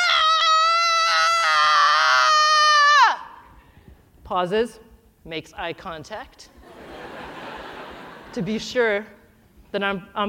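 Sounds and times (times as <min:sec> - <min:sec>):
person imitating a two-year-old boy's tantrum scream: 0:00.0 - 0:03.4
speech: 0:04.3 - 0:06.5, 0:08.4 - 0:10.2
laughter: 0:06.7 - 0:08.4.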